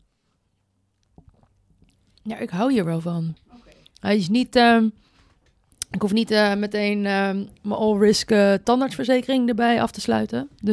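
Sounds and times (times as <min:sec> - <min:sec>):
person sipping a drink with a wet slurp: 0:01.0 - 0:02.2
speech: 0:02.2 - 0:03.4, 0:04.0 - 0:05.0, 0:05.9 - 0:10.7.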